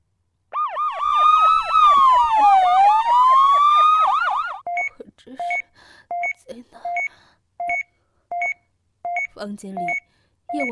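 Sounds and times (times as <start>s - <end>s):
police car siren wailing from arriving police cars: 0.6s - 4.6s
speech: 9.4s - 10.7s.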